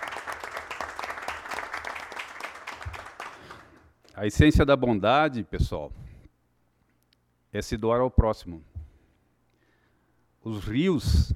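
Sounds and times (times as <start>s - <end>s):
audience applauding: 0.0s - 3.8s
speech: 4.2s - 6.0s, 7.5s - 8.7s, 10.4s - 11.3s.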